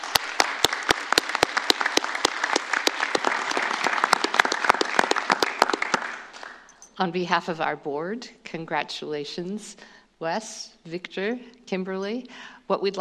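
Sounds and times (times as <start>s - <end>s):
audience applause: 0.0s - 6.7s
sharper louder hand claps: 0.0s - 6.7s
speech: 7.0s - 13.0s.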